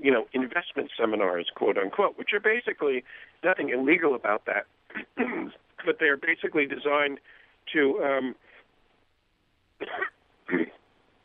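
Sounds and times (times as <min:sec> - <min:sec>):
speech: 0:00.0 - 0:08.5, 0:09.8 - 0:10.8
faint low murmur: 0:00.0 - 0:11.2
harsh throat-clearing coughs: 0:04.9 - 0:05.6, 0:09.8 - 0:10.8.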